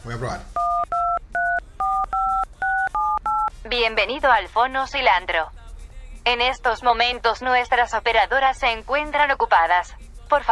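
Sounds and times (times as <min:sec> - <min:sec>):
speech: 0:00.0 - 0:00.6, 0:03.6 - 0:05.6, 0:06.2 - 0:10.5
touch-tone telephone keypad dialing beeps: 0:00.6 - 0:03.5.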